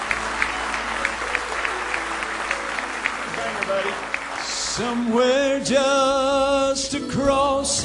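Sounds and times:
audience clapping hands in sustained praise: 0:00.0 - 0:05.7
speech: 0:03.7 - 0:04.1, 0:04.8 - 0:07.8.

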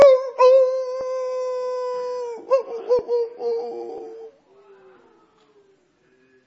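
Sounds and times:
distant wolf howling in answer to its pack: 0:00.0 - 0:04.4.

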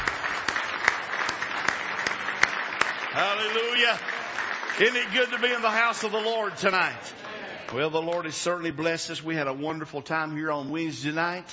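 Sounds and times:
audience clapping rhythmically in praise: 0:00.0 - 0:08.6
speech: 0:03.2 - 0:11.5.

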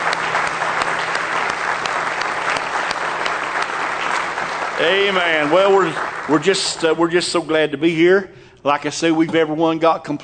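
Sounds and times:
church audience clapping in praise during a morning service: 0:00.0 - 0:07.2
speech: 0:04.8 - 0:10.2.

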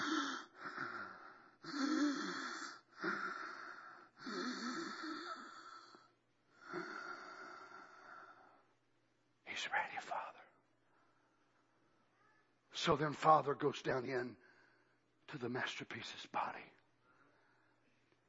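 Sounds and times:
voice imitating deep raspy wheezing breaths: 0:00.0 - 0:08.5
speech: 0:12.8 - 0:14.4, 0:15.3 - 0:16.8.

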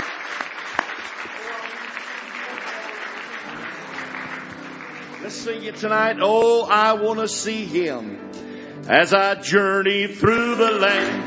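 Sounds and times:
church service audience clapping hands in praise: 0:00.0 - 0:07.0
murmur of voices: 0:01.4 - 0:08.0
speech: 0:05.2 - 0:11.2.

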